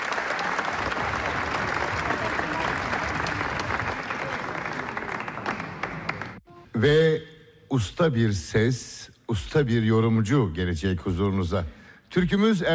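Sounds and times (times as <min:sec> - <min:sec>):
audience applause at a Turkish folk music concert: 0:00.0 - 0:06.4
speech: 0:06.8 - 0:12.7.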